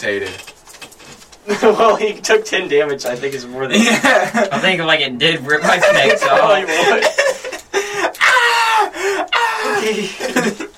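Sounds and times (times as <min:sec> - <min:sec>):
speech: 0:00.0 - 0:00.5, 0:01.5 - 0:07.2
laughter: 0:01.5 - 0:02.2, 0:03.7 - 0:04.9, 0:05.5 - 0:10.7
person screaming in agony: 0:08.2 - 0:10.3.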